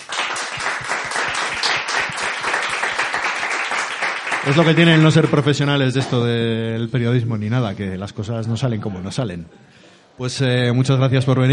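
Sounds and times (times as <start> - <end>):
audience applauding: 0.0 - 5.6
speech: 4.4 - 11.5.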